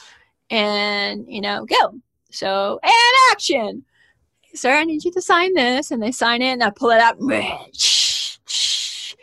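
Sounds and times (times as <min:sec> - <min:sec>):
speech: 0:00.5 - 0:03.9, 0:04.5 - 0:08.6
voice imitating pepper spray can hissing: 0:07.8 - 0:09.2.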